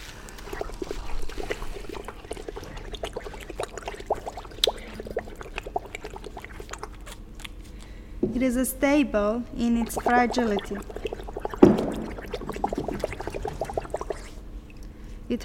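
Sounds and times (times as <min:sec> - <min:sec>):
water boiling for coffee: 0:00.0 - 0:07.1, 0:09.6 - 0:14.7
speech: 0:08.4 - 0:11.0.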